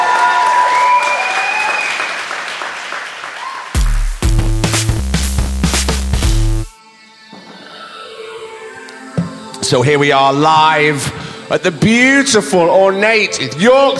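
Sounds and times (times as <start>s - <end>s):
audience cheering in a theatre: 0.0s - 3.8s
large audience applause in a theatre: 0.0s - 4.2s
music with strong bass beats: 3.8s - 6.8s
speech: 9.7s - 13.9s.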